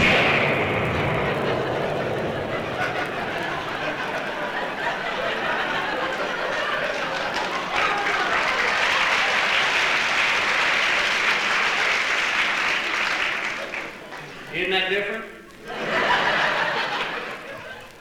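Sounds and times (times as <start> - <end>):
voice imitating explosions: 0.0 - 5.8
laughter: 0.0 - 14.5, 15.4 - 17.9.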